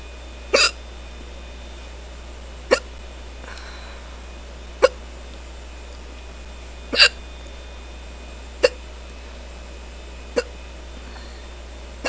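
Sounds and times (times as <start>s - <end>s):
quiet hum: 0.0s - 12.0s
person hiccuping: 0.5s - 0.8s, 4.8s - 5.0s, 6.9s - 7.2s, 8.6s - 8.8s.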